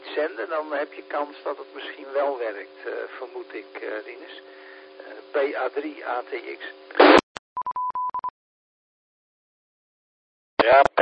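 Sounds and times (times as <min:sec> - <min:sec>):
speech: 0:00.2 - 0:07.2, 0:10.6 - 0:11.0
brief burst of noise: 0:07.0 - 0:07.3
electronic telephone tone in short beeps: 0:07.6 - 0:08.3.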